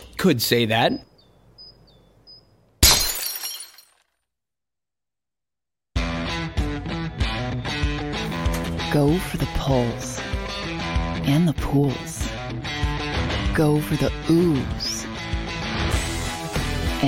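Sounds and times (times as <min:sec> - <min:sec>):
speech: 0:00.2 - 0:01.1, 0:09.0 - 0:10.4, 0:11.2 - 0:12.2, 0:13.6 - 0:14.9
glass bottle cracking as it is cut in half: 0:02.8 - 0:04.1
music: 0:06.0 - 0:17.0.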